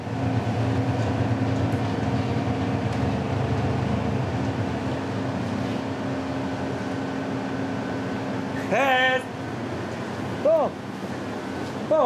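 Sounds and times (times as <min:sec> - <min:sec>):
vehicle engine droning while driving along a muddy path: 0:00.0 - 0:12.0.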